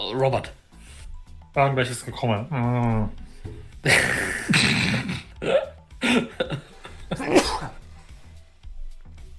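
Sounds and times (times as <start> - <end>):
speech: 0.1 - 0.6, 1.6 - 5.2
laughter: 3.8 - 5.2
person sneezing: 7.2 - 7.8.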